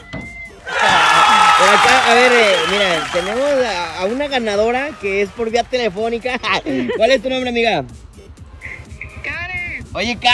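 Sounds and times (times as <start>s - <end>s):
group of prize winners shouting a cheer: 0.7s - 5.3s
laughter: 0.7s - 7.3s
speech: 2.1s - 8.2s, 10.0s - 10.3s.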